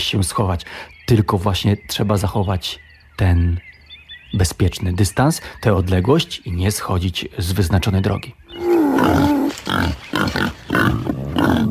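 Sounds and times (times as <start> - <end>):
speech: 0.1 - 3.7, 4.3 - 11.6
wild boar sows grunting and squealing: 8.5 - 11.6.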